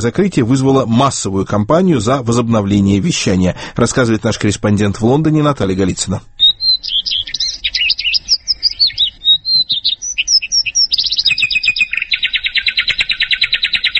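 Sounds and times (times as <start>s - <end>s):
speech: 0.0s - 6.9s
birdsong: 5.6s - 13.9s.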